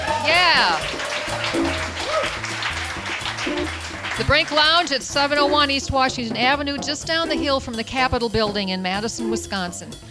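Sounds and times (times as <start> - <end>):
audience whoops: 0.0 - 2.4
live audience clapping and cheering at a lounge in Madison, Wisconsin: 0.0 - 5.8
speech: 4.2 - 10.0.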